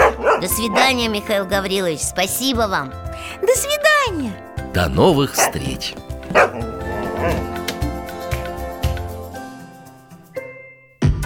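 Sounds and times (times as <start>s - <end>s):
speech: 0.4s - 6.6s
steady tonal background: 4.8s - 8.2s
dog whimpering: 5.0s - 7.9s
dog barking and yipping: 5.2s - 7.8s.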